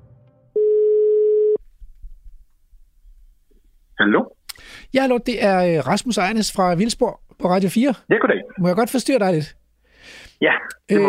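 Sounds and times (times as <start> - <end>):
telephone ringback tone: 0.6 - 1.6
speech: 4.9 - 11.0.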